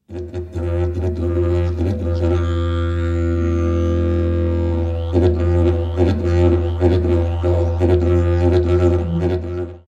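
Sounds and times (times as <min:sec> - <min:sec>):
aerophone: 0:00.0 - 0:09.8.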